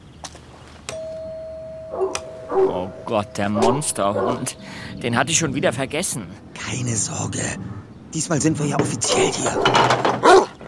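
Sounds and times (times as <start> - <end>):
electronic doorbell ringing at a front door: 0.9 - 4.8
speech: 2.5 - 10.4.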